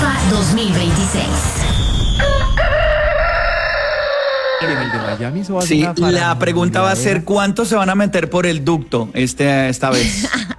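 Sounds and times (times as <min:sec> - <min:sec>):
speech: 0:00.4 - 0:02.3, 0:04.6 - 0:10.5
rooster crowing: 0:02.2 - 0:05.2.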